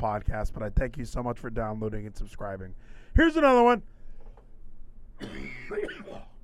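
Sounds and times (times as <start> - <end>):
speech: 0.0 - 4.0, 5.2 - 6.3
rough raspy throaty cough: 5.2 - 6.4.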